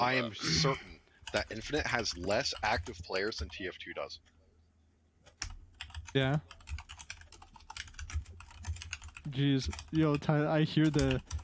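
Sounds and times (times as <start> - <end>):
speech: 0.0 - 4.3, 6.1 - 6.6, 9.3 - 11.4
typing on a computer keyboard: 1.2 - 3.7, 5.2 - 11.4.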